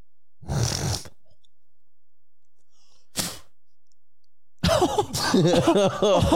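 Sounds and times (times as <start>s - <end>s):
harsh throaty cough clearing up phlegm from years of smoking: 4.6s - 6.3s
loud strained hacking mixed with laughter: 4.6s - 6.3s.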